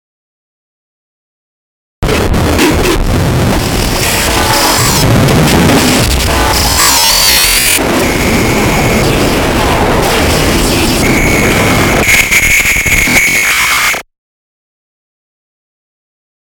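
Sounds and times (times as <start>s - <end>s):
digital glitch warp transition: 2.0s - 14.0s.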